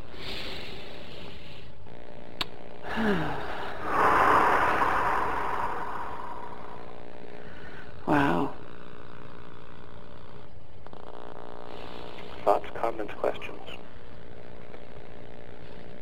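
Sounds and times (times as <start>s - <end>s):
faint steady hum: 0.0s - 16.0s
slow deep breath: 0.1s - 1.8s, 2.8s - 8.0s
speech: 3.0s - 3.4s.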